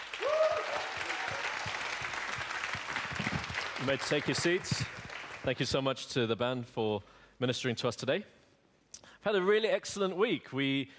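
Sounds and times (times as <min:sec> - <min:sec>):
audience applauding as a praise offering: 0:00.0 - 0:05.6
person cheering: 0:00.1 - 0:01.9
speech: 0:03.8 - 0:08.4, 0:09.2 - 0:10.9.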